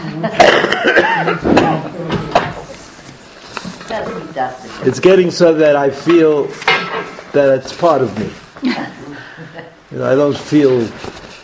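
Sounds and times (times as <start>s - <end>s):
speech: 0.2s - 2.1s, 3.9s - 8.9s, 10.0s - 11.1s
person coughing: 0.3s - 1.8s.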